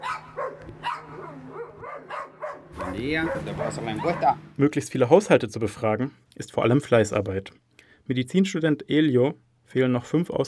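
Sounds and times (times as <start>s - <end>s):
several dogs barking at a house: 0.0s - 4.4s
speech: 3.0s - 10.4s.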